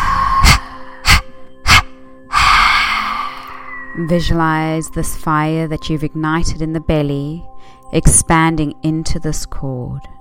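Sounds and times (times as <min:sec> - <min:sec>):
sharp forceful exhales: 0:00.0 - 0:04.0
speech: 0:04.0 - 0:10.1.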